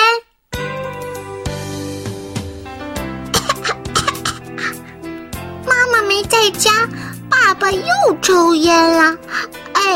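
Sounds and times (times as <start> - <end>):
music: 0.5 - 9.9
person coughing from cigarette smoke: 3.3 - 4.8
speech: 6.5 - 9.9.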